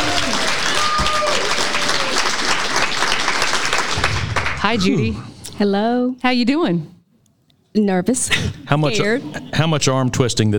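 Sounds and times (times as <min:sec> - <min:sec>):
crowd applauding: 0:00.0 - 0:05.2
speech: 0:04.6 - 0:07.0, 0:07.7 - 0:10.5.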